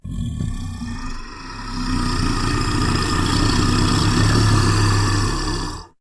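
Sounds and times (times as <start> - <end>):
ogre voice: 0.0 - 5.9.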